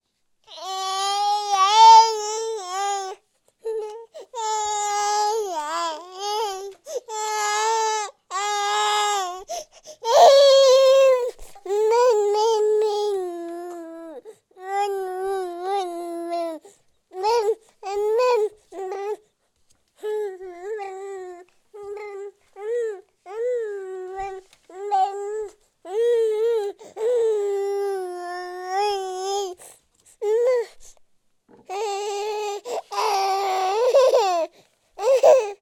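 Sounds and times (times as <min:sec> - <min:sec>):
infant whining and crying: 0:00.5 - 0:19.3, 0:20.0 - 0:30.9, 0:31.5 - 0:35.6.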